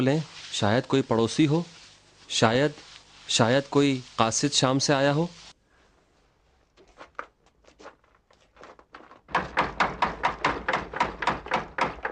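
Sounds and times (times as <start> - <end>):
speech: 0.0 - 5.4
knocking on a door: 9.3 - 12.1.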